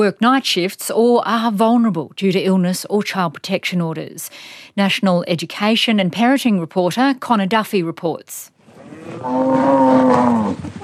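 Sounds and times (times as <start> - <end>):
speech: 0.0 - 10.8
cow lowing on a cattle grazing property northwest of Longreach: 8.8 - 10.6.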